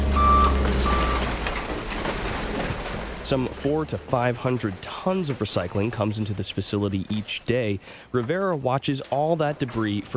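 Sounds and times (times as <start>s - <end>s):
garbage truck reverse alarm beeps: 0.0s - 1.3s
garbage truck deep continuous engine rumble on a recycling facility tipping floor: 0.0s - 5.4s
speech: 3.3s - 10.1s.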